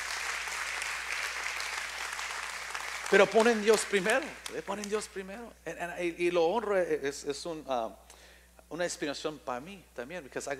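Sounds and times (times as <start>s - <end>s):
audience applause at a church service: 0.0s - 5.0s
speech: 3.1s - 8.1s, 8.7s - 10.5s.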